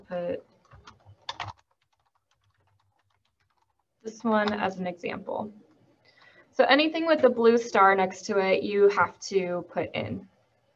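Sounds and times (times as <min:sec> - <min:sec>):
speech: 0:00.1 - 0:00.5, 0:04.1 - 0:05.6, 0:06.6 - 0:10.3
typing on a computer keyboard filling in an online entry form: 0:00.6 - 0:04.7.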